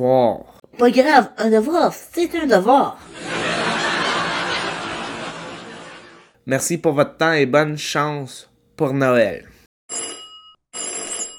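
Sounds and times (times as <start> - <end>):
speech: 0.0 - 3.3, 6.4 - 9.5
laughter: 3.0 - 6.3
telephone bell ringing: 9.9 - 11.3.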